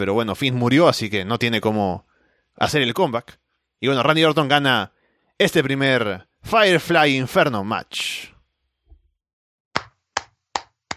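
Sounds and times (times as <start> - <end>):
speech: 0.0 - 8.3
lone person clapping hands: 9.8 - 10.9.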